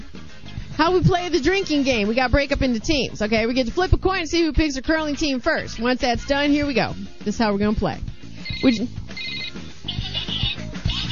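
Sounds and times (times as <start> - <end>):
speech: 0.8 - 9.4
telephone ringing with bright trilling bursts: 8.4 - 10.5.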